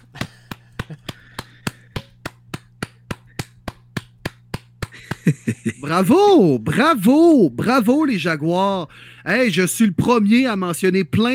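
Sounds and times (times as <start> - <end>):
single person clapping hands: 0.0 - 5.8
laughter: 5.0 - 6.0
speech: 5.3 - 11.3.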